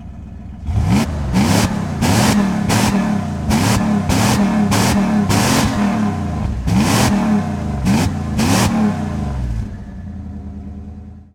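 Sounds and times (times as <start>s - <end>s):
pickup truck engine revving: 0.0s - 11.2s.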